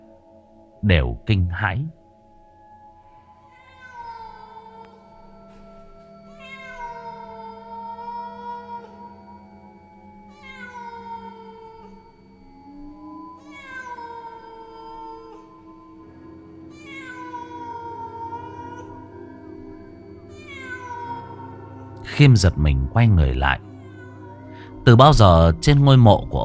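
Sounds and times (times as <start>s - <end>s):
speech: 0.8s - 2.0s, 22.2s - 23.7s, 24.9s - 26.4s
black cat meowing on a grave in a graveyard at night: 3.5s - 5.0s, 6.3s - 9.1s, 10.3s - 12.1s, 13.4s - 15.6s, 16.7s - 19.0s, 20.3s - 21.6s, 23.6s - 24.8s.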